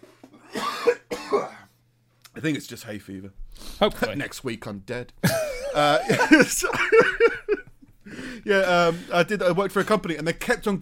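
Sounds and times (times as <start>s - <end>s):
person coughing: 0.4s - 1.7s, 5.2s - 7.6s
speech: 2.4s - 7.4s, 8.4s - 10.7s
soft breaths: 3.4s - 4.0s, 8.0s - 9.2s
laughter: 5.2s - 9.0s.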